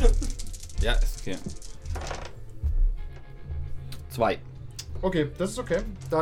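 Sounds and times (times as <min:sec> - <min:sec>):
dice rolled for initiative clattering across a tabletop: 0:00.0 - 0:02.3, 0:05.6 - 0:06.2
speech: 0:00.8 - 0:01.7, 0:04.2 - 0:06.2.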